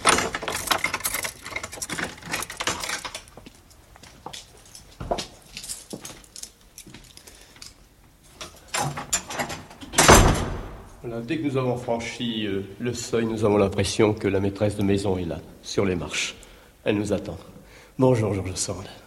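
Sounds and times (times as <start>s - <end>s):
door of a historic writer's house being opened: 0.0s - 3.5s, 8.4s - 11.0s
keys and lock rattling on the door of a historic writer's house: 0.0s - 10.4s
speech: 11.1s - 19.0s.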